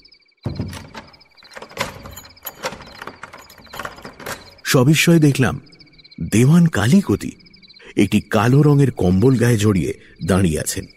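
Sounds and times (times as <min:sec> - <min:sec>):
door opened at night: 0:00.4 - 0:05.0
speech: 0:04.7 - 0:07.4, 0:08.0 - 0:10.9.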